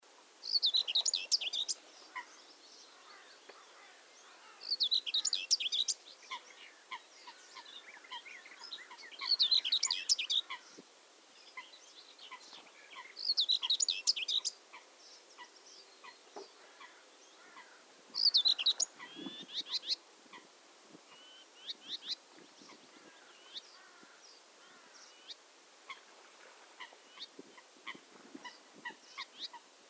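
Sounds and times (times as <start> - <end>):
Whitethroat Curruca communis singing: 0.4 - 10.8, 11.4 - 20.0, 21.1 - 25.4.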